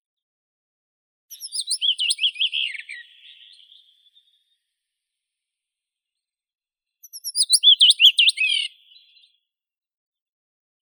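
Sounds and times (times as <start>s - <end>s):
Blue rock thrush singing: 1.3s - 3.7s, 7.1s - 8.8s.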